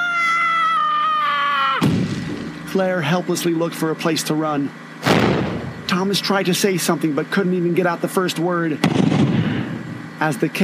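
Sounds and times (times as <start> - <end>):
long high-pitched terrified scream: 0.0 - 2.1
heavy thud: 1.8 - 2.6, 8.8 - 9.8
speech: 2.8 - 5.3, 5.9 - 9.2, 10.2 - 10.6.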